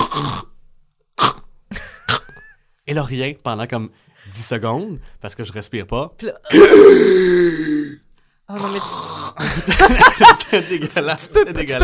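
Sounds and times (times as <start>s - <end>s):
voice imitating throaty snoring: 0.0s - 0.6s, 6.5s - 9.4s
speech: 2.9s - 11.8s
laughter: 9.4s - 11.8s.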